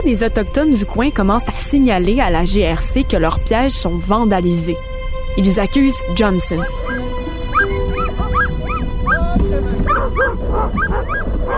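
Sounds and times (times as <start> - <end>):
speech: 0.0 - 6.8
steady rumbling background: 0.0 - 11.5
pack of sled dogs pulling a dog sled barking and yipping: 6.5 - 11.5.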